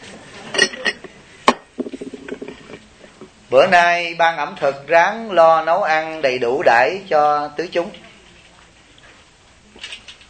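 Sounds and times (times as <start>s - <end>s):
cup or glass clinking: 0.5s - 2.8s
speech: 3.5s - 8.0s.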